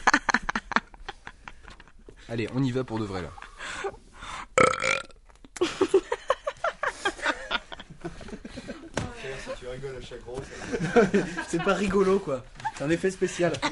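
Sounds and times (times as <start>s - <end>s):
speech: 2.3s - 4.0s, 9.6s - 13.6s
loud drawn-out croaky burp: 4.6s - 5.2s
laughter: 5.6s - 13.6s.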